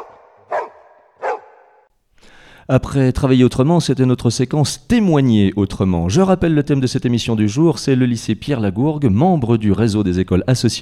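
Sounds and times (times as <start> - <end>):
high school's dog barking: 0.0 - 1.9
speech: 2.7 - 10.8.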